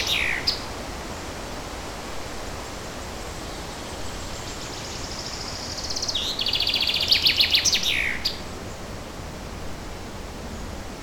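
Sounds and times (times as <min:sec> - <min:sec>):
bird song with fast high-pitched trilled phrases in forest: 0:00.0 - 0:00.7, 0:03.3 - 0:08.9
steady outdoor background hiss in forest: 0:00.0 - 0:11.0.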